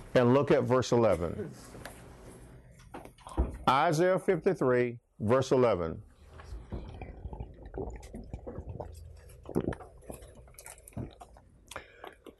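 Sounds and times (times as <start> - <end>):
speech: 0.2 - 1.9, 3.7 - 6.1
person drinking water: 6.1 - 12.3.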